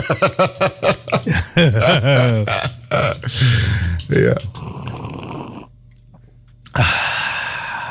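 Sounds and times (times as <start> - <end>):
laughter: 0.0 - 3.4
speech: 0.0 - 4.5, 6.8 - 7.0
loud vocal grunts and throaty noises: 1.8 - 5.7.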